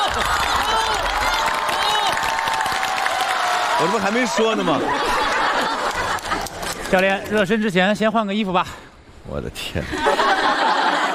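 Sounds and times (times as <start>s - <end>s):
excited voices and cheers: 0.0s - 6.7s
small group applauding a coach: 0.0s - 7.6s
speech: 0.2s - 0.4s, 3.8s - 5.8s, 6.9s - 10.6s
laughter: 3.8s - 7.4s, 9.8s - 11.1s.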